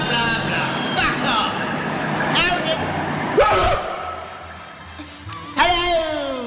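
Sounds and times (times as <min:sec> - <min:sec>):
large school bus engine drone passing on the road: 0:00.0 - 0:05.6
voices: 0:00.0 - 0:06.4.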